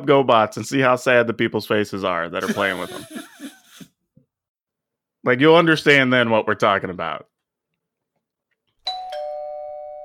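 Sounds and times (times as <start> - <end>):
speech: 0.0 - 3.2, 5.2 - 7.3
laughter: 2.4 - 3.9
two-note doorbell chime: 8.8 - 10.0.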